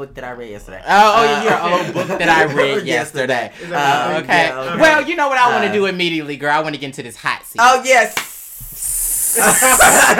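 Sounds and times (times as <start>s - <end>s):
speech: 0.0s - 8.3s, 9.3s - 10.1s
laughter: 1.2s - 3.1s, 9.4s - 10.1s
sizzling hiss sound effect: 7.6s - 10.1s.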